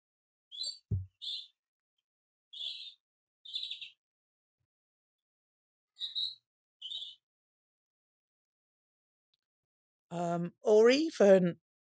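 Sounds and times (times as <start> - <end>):
robin singing: 0.5 - 1.6, 2.5 - 4.0, 6.0 - 7.2
speech: 10.1 - 11.6.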